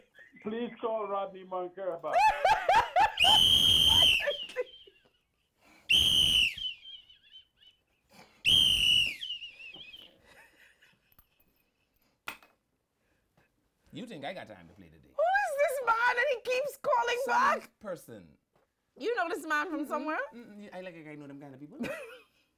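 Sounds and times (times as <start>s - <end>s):
speech: 0.4s - 4.5s, 14.0s - 18.4s, 19.0s - 22.2s
laughter: 2.1s - 5.1s
whistle blasts: 3.2s - 4.6s, 5.9s - 7.0s, 8.5s - 10.1s.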